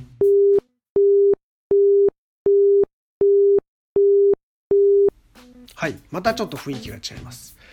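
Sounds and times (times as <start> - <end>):
British telephone busy tone: 0.4 - 5.1
speech: 5.8 - 7.7.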